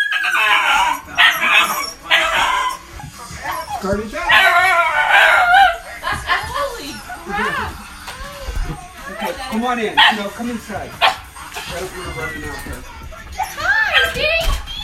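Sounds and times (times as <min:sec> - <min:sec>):
dog barking excitedly with yips and whiny howling: 0:00.0 - 0:06.9, 0:09.2 - 0:10.4, 0:11.0 - 0:11.3, 0:13.3 - 0:14.8.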